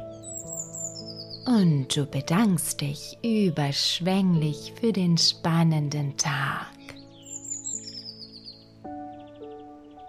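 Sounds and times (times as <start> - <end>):
blue tit perched on a branch chirping and trilling: 0.0 - 1.9, 6.4 - 10.0
speech: 1.5 - 6.8.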